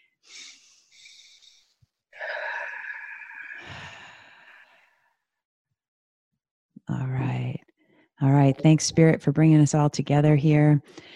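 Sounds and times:
group taking a deep breath: 0.3s - 5.0s, 10.9s - 11.1s
speech: 8.5s - 11.1s.

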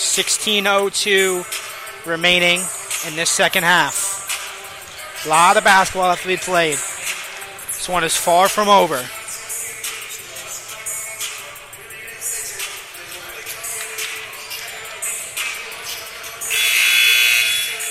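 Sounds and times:
speech: 0.2s - 4.1s, 5.2s - 6.9s, 7.8s - 9.2s
loud sustained arena buzzer: 16.4s - 17.8s.

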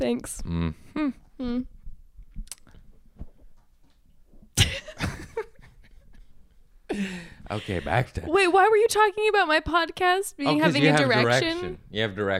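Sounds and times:
speech: 0.0s - 1.8s, 7.0s - 12.3s
person coughing: 4.6s - 5.0s.

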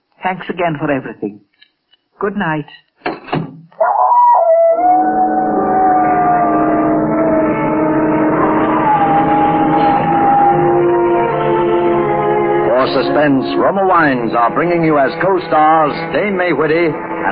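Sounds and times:
speech: 0.2s - 1.5s, 2.2s - 2.9s, 12.8s - 17.2s
dog howling: 3.8s - 13.2s.

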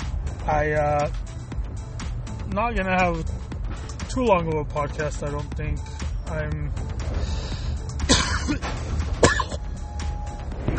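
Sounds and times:
steady low rumble: 0.0s - 10.7s
speech: 0.5s - 1.3s, 2.5s - 3.4s, 4.2s - 7.5s, 8.5s - 9.2s
person clearing throat: 8.1s - 8.6s
person coughing: 8.1s - 8.6s, 9.2s - 9.6s.

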